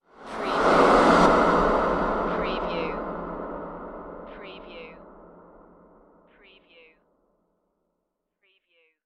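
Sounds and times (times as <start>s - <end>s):
reversed production element: 0.0s - 6.4s.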